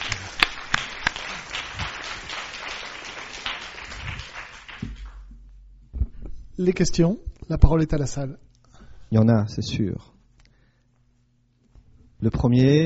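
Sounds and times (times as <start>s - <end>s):
audience applauding after a presentation: 0.0s - 5.3s
sharp individual claps: 0.0s - 5.4s
speech: 6.6s - 8.5s, 9.1s - 10.1s, 12.2s - 12.8s.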